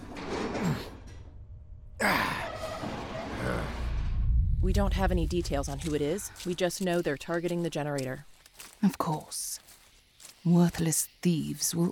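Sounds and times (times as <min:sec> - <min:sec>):
door being worked on, scraping and rumbling slide: 0:02.3 - 0:04.5
speech: 0:04.7 - 0:09.6, 0:10.4 - 0:11.8.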